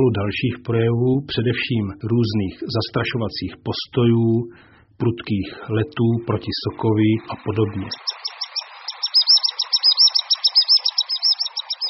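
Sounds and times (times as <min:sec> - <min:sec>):
speech: 0:00.0 - 0:08.2
common sandpiper calling in shrill thin notes: 0:07.9 - 0:11.8.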